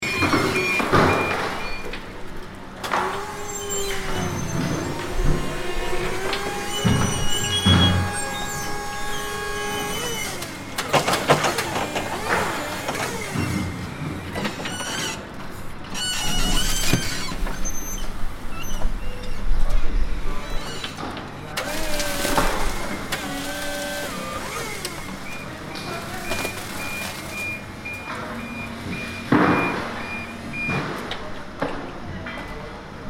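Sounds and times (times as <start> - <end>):
heavy machinery at a construction site: 0.0 - 33.0.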